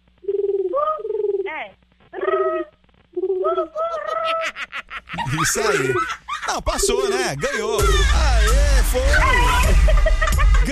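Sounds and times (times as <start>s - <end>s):
woman imitating pigeon cooing as a contest challenge: 0.3s - 4.6s
laughter: 3.8s - 10.7s
speech: 5.3s - 10.2s.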